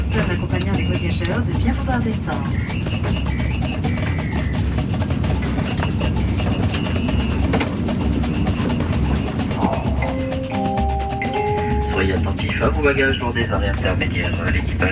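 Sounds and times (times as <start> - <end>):
TGV high-speed train interior rumble: 0.0 - 14.9
speech: 0.2 - 4.3, 12.1 - 14.9
chime-like tones inside a TGV high-speed train: 9.6 - 12.4.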